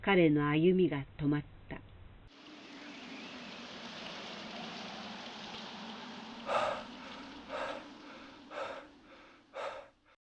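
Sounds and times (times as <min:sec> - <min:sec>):
speech: 0:00.0 - 0:01.8
steady autumn rain falling: 0:02.3 - 0:09.9
heavy breaths or gasps: 0:06.4 - 0:10.2.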